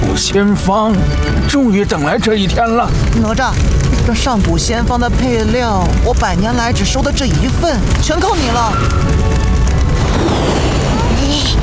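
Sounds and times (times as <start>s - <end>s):
speech: 0.2s - 9.5s
deep rumbling boom of a magic gourd bursting with spiritual energy: 2.5s - 11.6s.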